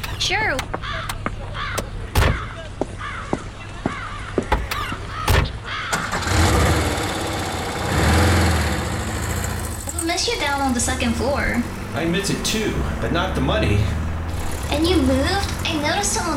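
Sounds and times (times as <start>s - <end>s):
speech: 0.2s - 1.2s, 10.6s - 14.0s, 14.7s - 16.3s
crows cawing overhead: 0.8s - 6.3s
car engine idling: 5.9s - 16.3s.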